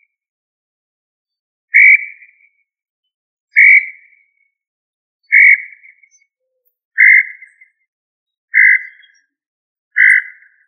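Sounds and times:
quail of family Tinamidae giving raspy calls: 5.3 - 5.9, 7.0 - 7.6, 8.5 - 9.2, 10.0 - 10.6.

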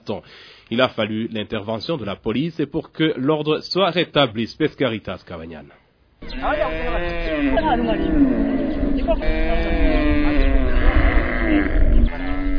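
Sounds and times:
speech: 0.1 - 8.5, 9.1 - 10.0
herd of more than 200 cows mooing on a youth centre's grounds in Gihanga: 6.2 - 12.5.

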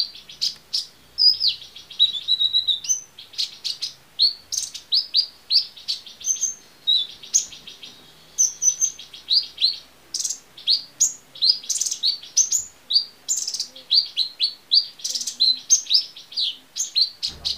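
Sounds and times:
small bird chirping in rapid high-pitched bursts: 0.0 - 17.5.

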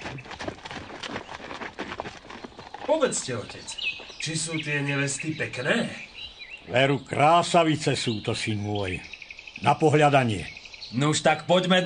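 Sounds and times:
hoofbeats of saddled horses setting off at a quick pace: 0.0 - 4.8
speech: 2.9 - 11.8.

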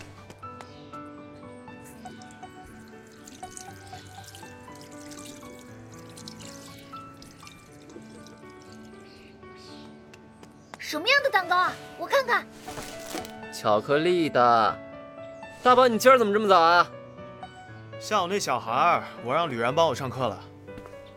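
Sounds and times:
water running from a tap as someone washes oily hands at a sink: 1.8 - 9.3
speech: 10.9 - 13.0, 13.6 - 14.8, 15.6 - 17.0, 18.0 - 20.5.

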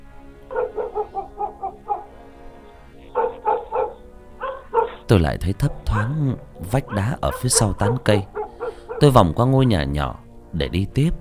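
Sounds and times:
dog barking from inside a house in hilly country: 0.5 - 2.3, 3.0 - 9.9
speech: 5.1 - 8.4, 9.0 - 11.2.

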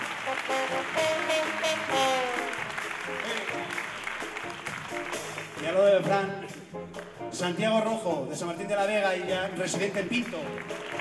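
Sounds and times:
concert audience applause at a theatre: 0.0 - 7.1, 9.8 - 10.9
speech: 0.5 - 1.3, 5.6 - 6.8, 7.4 - 10.9.

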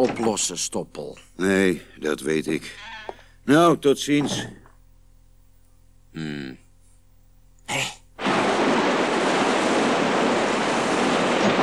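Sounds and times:
speech: 0.0 - 4.6, 6.1 - 6.6
gusting wind: 8.2 - 11.6
rough sea waves surging: 8.2 - 11.6.

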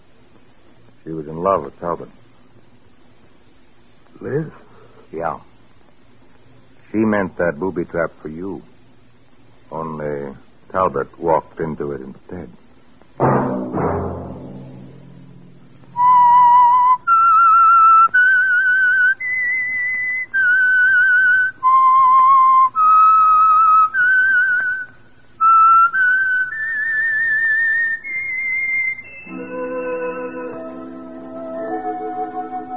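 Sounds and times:
speech: 1.0 - 2.2, 4.2 - 5.5, 6.9 - 8.7, 9.7 - 12.6
whistled theme tune for a radio mystery drama: 16.0 - 32.7.

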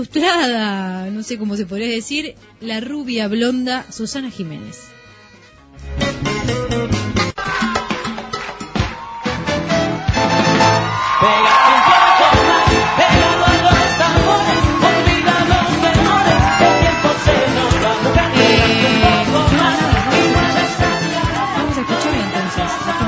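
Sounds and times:
speech: 0.0 - 5.0, 11.2 - 12.0
crowd shouting and cheering at a performer's entrance: 7.1 - 23.0.

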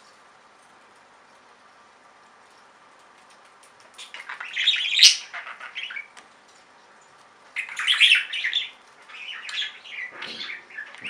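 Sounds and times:
budgerigar warbling and chirping: 4.0 - 6.1, 7.6 - 11.0.

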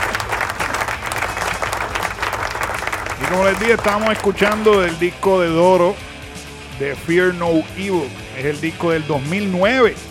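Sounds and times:
applause in a rock radio studio: 0.0 - 5.1
speech: 3.2 - 6.1, 6.8 - 10.0.

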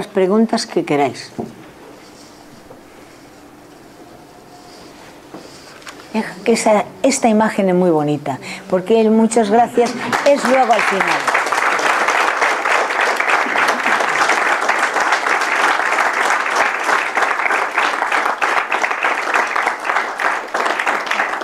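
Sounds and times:
speech: 0.0 - 1.5, 6.2 - 11.4
audience applause at the close of a talk: 9.5 - 21.4.

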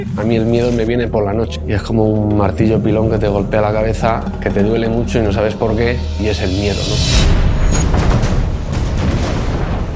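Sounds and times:
speech: 0.1 - 7.5
rumbling explosions shaking a hotel: 2.6 - 9.9.

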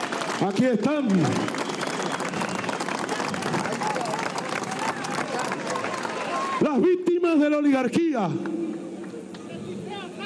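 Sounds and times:
large crowd applauding: 0.0 - 6.9
crowd voices: 0.0 - 10.2
speech: 0.4 - 1.7, 6.6 - 8.7.

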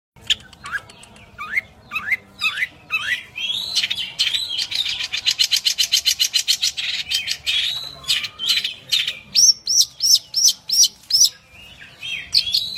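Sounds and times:
long-tailed shrike singing: 0.2 - 12.7.

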